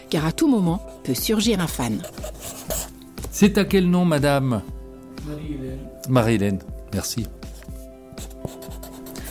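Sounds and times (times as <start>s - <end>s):
speech: 0.1s - 2.6s, 3.4s - 7.4s
pen scratching and squeaking across paper drawing a cartoon: 0.8s - 2.9s, 7.6s - 9.2s.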